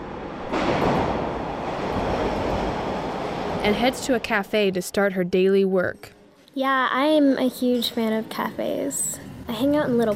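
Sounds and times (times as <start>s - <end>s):
subway train in motion rumbling: 0.0s - 4.8s
speech: 3.6s - 10.1s.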